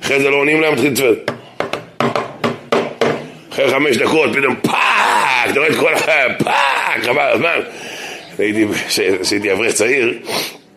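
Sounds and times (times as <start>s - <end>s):
speech: 0.1s - 1.4s, 3.6s - 10.6s
sharp knocks on a wooden surface demonstrating door knocking: 1.3s - 3.2s.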